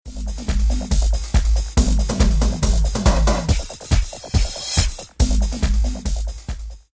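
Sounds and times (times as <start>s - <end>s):
dance music: 0.0s - 6.9s.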